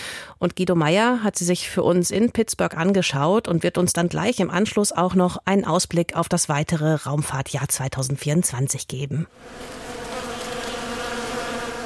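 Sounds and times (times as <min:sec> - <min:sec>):
speech: 0:00.4 - 0:10.0
dense swarm of bees buzzing: 0:09.3 - 0:11.8.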